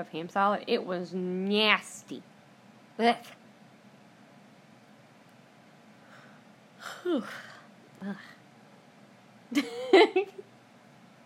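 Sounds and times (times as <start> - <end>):
speech: 0.0 - 2.3, 3.0 - 3.4, 7.0 - 8.4, 9.5 - 10.4
person yawning: 6.8 - 8.4.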